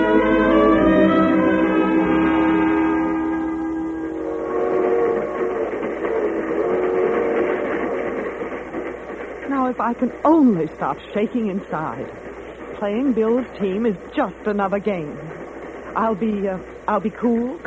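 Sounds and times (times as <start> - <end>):
train horn: 0.0 - 8.2
train wheels rumbling and clattering on rails: 0.0 - 17.6
speech: 9.9 - 15.3, 16.0 - 17.6.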